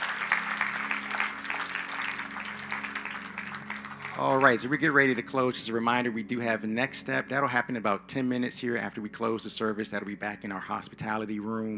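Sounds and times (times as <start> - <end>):
room full of people applauding: 0.0 - 5.2
speech: 4.2 - 11.7.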